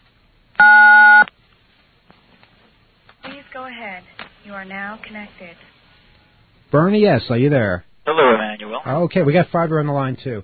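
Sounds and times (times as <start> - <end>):
telephone keypad tone for the digit 9 dialed to accept a collect call: 0.6 - 1.2
speech: 3.6 - 5.7, 6.7 - 10.4.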